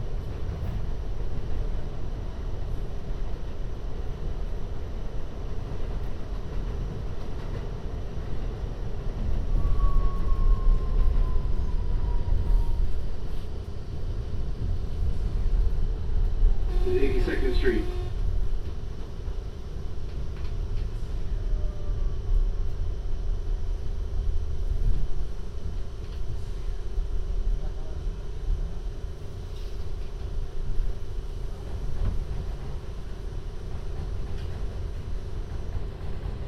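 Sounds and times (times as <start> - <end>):
Manhattan-bound 7 subway train rumbling heard from inside the car: 0.0 - 36.4
faint clanks and squeals: 9.5 - 13.0.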